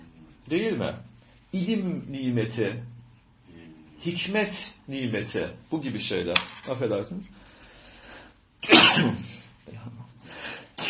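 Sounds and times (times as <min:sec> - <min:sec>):
speech: 0:00.5 - 0:02.9, 0:04.0 - 0:07.4, 0:08.6 - 0:10.0
person sneezing: 0:08.6 - 0:09.6.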